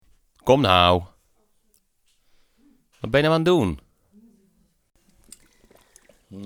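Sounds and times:
speech: 0:00.5 - 0:01.1, 0:03.0 - 0:03.8
water pouring into a glass: 0:05.1 - 0:06.4.

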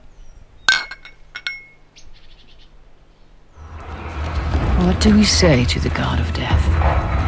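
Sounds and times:
glasses of wine and beer clinking in a toast at a picnic: 0:00.7 - 0:01.8
speech: 0:04.8 - 0:07.1.

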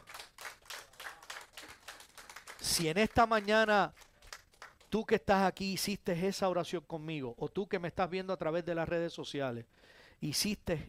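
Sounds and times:
audience clapping rhythmically: 0:00.0 - 0:05.4
speech: 0:02.6 - 0:04.0, 0:04.9 - 0:10.8.

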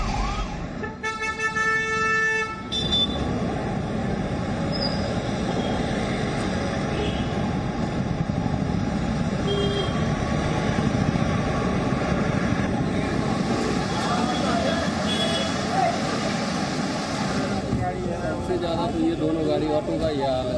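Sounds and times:
heavy road traffic in a jam rumbling: 0:00.0 - 0:20.5
loud sustained vehicle horn blaring: 0:00.8 - 0:03.2.

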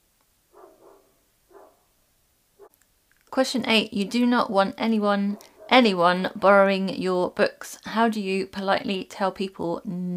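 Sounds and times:
dogs barking: 0:00.5 - 0:01.9, 0:02.6 - 0:02.8, 0:05.3 - 0:05.8
speech: 0:03.4 - 0:10.1.

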